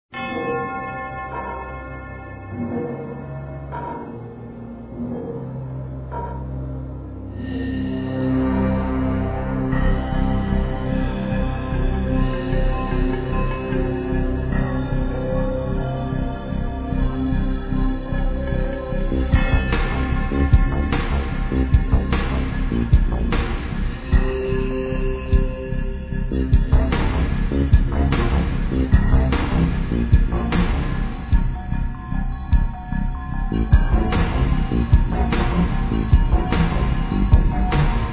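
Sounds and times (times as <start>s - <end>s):
dungeon music: 0.1s - 38.1s.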